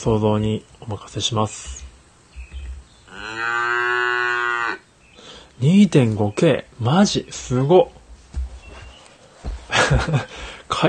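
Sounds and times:
speech: 0:00.0 - 0:01.8, 0:05.6 - 0:08.0, 0:09.9 - 0:10.8
low thumps: 0:01.5 - 0:03.1, 0:07.9 - 0:10.6
cow mooing: 0:03.1 - 0:04.8
laughter: 0:09.7 - 0:10.6.

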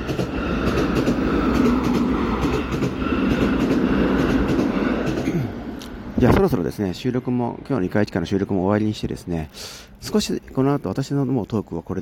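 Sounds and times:
faint rhythmic clatter of train wheels: 0:00.0 - 0:05.4
train passing: 0:00.0 - 0:12.0
speech: 0:06.2 - 0:12.0.

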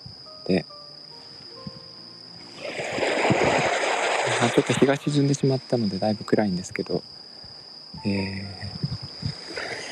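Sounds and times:
speech: 0:00.5 - 0:00.8, 0:04.5 - 0:07.2, 0:08.0 - 0:09.0
calm sea waves lapping on the shore at the seaside in Hayama: 0:02.5 - 0:05.0.

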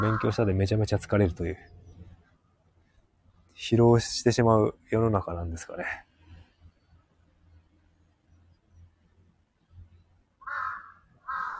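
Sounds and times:
crows cawing harshly: 0:00.0 - 0:00.5, 0:10.4 - 0:11.5
speech: 0:00.0 - 0:01.8, 0:03.6 - 0:06.1
quiet outdoor rumble: 0:00.0 - 0:11.5.

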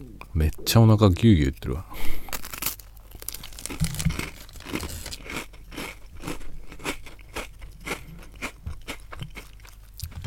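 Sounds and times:
speech: 0:00.0 - 0:02.2
crunching and chewing a Marie biscuit: 0:02.0 - 0:10.2.

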